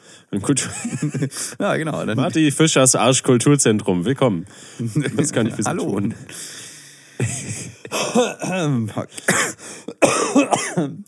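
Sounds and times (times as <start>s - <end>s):
speech: 0.3s - 9.5s, 10.4s - 11.0s
laughter: 0.4s - 2.5s, 4.8s - 6.3s, 7.2s - 8.4s
person coughing: 7.2s - 11.0s
throat-clearing: 7.7s - 11.0s.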